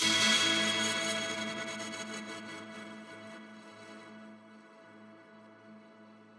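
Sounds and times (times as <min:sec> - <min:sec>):
pretty musical hit in A major: 0:00.0 - 0:02.2.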